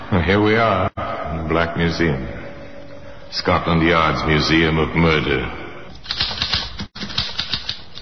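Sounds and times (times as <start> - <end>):
speech: 0.3 - 2.4, 3.3 - 6.2
typewriter keys clacking: 6.0 - 8.0.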